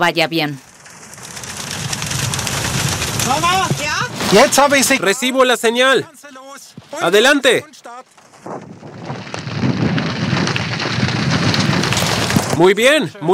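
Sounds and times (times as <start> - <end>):
speech: 0.0 - 0.7, 3.3 - 8.0, 12.6 - 13.3
heavy rain during a thunderstorm: 0.6 - 5.0, 8.9 - 12.6.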